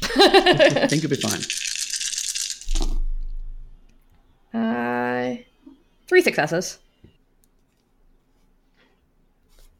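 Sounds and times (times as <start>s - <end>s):
laughter: 0.0s - 1.0s
speech: 0.2s - 1.6s, 6.1s - 6.8s
handful of dice rattling: 0.6s - 3.0s.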